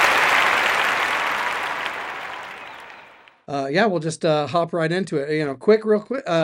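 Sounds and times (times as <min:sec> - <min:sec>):
small group applauding: 0:00.0 - 0:03.4
speech: 0:03.5 - 0:06.4.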